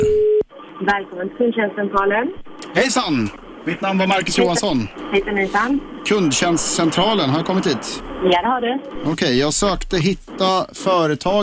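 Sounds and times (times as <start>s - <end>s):
electronic telephone tone: 0.0s - 0.4s
faint hum: 0.0s - 11.4s
speech: 0.8s - 11.4s.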